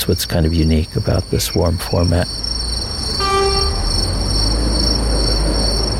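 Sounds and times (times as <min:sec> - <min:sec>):
speech: 0:00.0 - 0:02.5
loud rumble of rail noise: 0:01.2 - 0:05.9
high sustained ringing tones: 0:03.0 - 0:05.0
train horn blast: 0:03.2 - 0:04.2.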